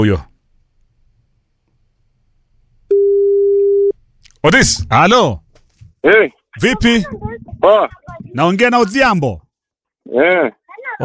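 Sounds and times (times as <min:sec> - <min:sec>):
speech: 0:00.0 - 0:00.3, 0:04.4 - 0:05.4, 0:06.0 - 0:09.4, 0:10.0 - 0:11.0
telephone line tone while calling a radio listener: 0:02.9 - 0:04.0.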